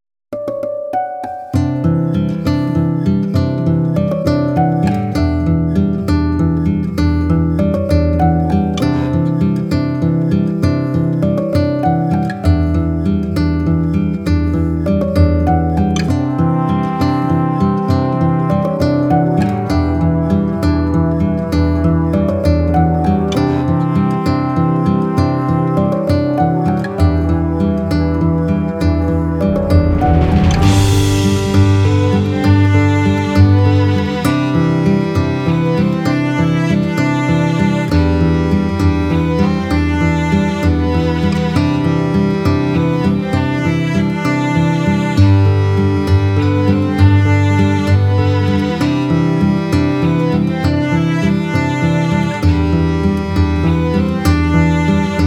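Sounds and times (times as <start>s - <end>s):
classical guitar: 0.3s - 55.2s.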